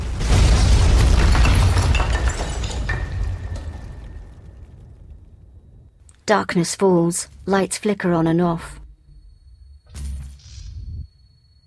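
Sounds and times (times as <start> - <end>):
crackling shattering debris: 0.0 - 5.4
bomb blast explosion filling a building: 0.0 - 6.0
speech: 6.3 - 8.8.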